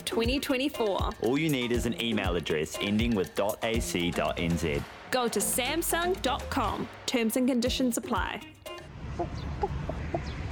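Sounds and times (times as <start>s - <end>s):
speech: 0.1s - 8.6s, 9.2s - 9.9s
chicken clucking: 9.1s - 10.5s.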